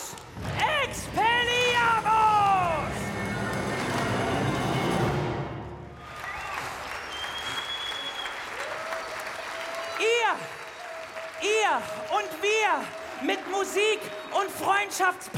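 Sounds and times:
crowd applauding: 0:00.0 - 0:05.3, 0:05.9 - 0:15.3
rising and falling whistling tones: 0:06.0 - 0:08.5.

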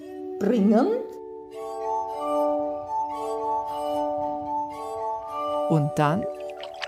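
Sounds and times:
speech: 0:00.4 - 0:01.2, 0:05.7 - 0:06.4
pedal-driven glass harmonica with rotating glasses ringing: 0:01.5 - 0:06.8.

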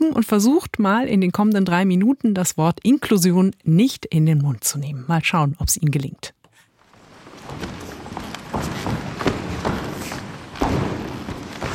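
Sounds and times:
speech: 0:00.1 - 0:06.4
many feet stomping and striding across a wooden floor: 0:06.8 - 0:11.7.

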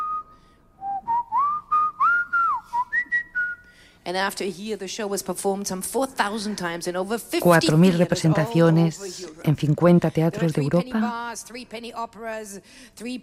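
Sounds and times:
clear whistled opera melody: 0:00.0 - 0:03.7
speech: 0:04.0 - 0:13.2.

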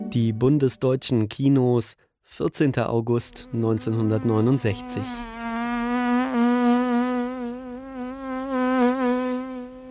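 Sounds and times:
speech: 0:00.1 - 0:05.3
housefly buzzing: 0:03.4 - 0:09.8.

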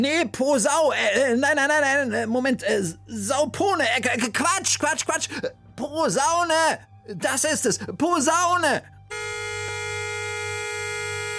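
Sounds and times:
speech: 0:00.0 - 0:09.4
vehicle horn honking: 0:09.1 - 0:11.3.

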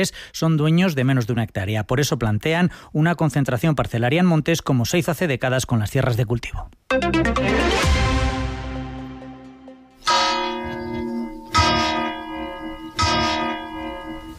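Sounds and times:
speech: 0:00.0 - 0:08.0
church bell tolling in Antequera Málaga in mourning: 0:10.0 - 0:14.3.

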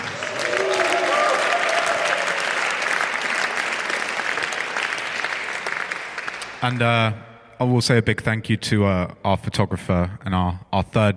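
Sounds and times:
crowd applauding for the drummer as band members are introduced: 0:00.0 - 0:06.8
speech: 0:06.6 - 0:11.1.

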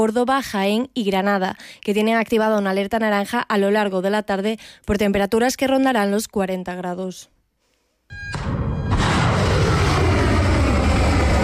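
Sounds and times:
speech: 0:00.0 - 0:07.4
aircraft taking off: 0:08.2 - 0:11.4
missile launches: 0:08.2 - 0:11.4.

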